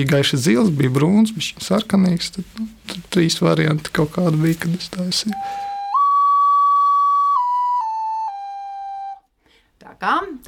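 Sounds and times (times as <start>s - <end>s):
speech: 0.0s - 5.7s, 10.0s - 10.4s
handmade glazed brownish ceramic bird-shaped clay whistle being blown: 5.4s - 9.4s.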